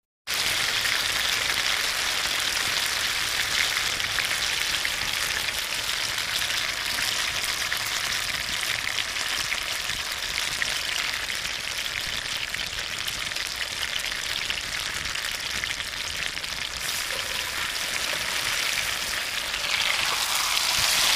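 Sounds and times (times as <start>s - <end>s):
meat sizzling while cooking: 0.3s - 21.1s.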